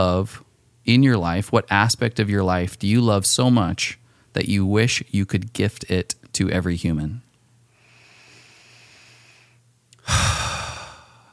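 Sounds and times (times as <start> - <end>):
speech: 0.0 - 7.2
deep breath: 7.7 - 11.3.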